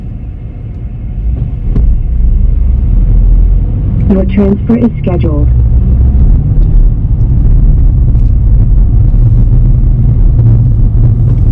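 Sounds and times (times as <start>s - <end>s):
low-frequency road rumble in the cabin of a moving car: 0.0s - 11.5s
speech: 4.1s - 5.6s.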